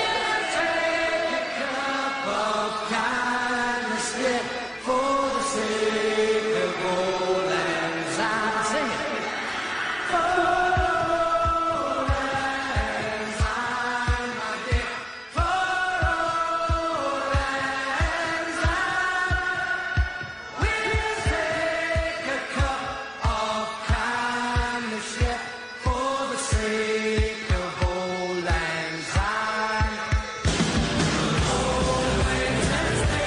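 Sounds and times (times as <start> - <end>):
party crowd singing a traditional song: 0.0 - 33.2
rhythmic thumps: 10.2 - 33.2.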